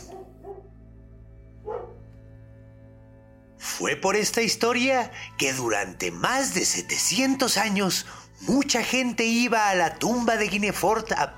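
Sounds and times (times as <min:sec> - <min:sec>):
dog barking: 0:00.0 - 0:00.8, 0:01.6 - 0:02.1
speech: 0:03.8 - 0:11.3.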